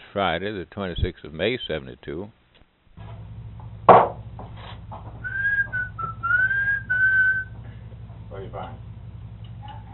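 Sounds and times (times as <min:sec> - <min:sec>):
speech: 0:00.1 - 0:02.4
low hum: 0:03.0 - 0:09.9
sharp knock: 0:03.9 - 0:04.5
person whistling a tune answering a bird: 0:05.2 - 0:07.6.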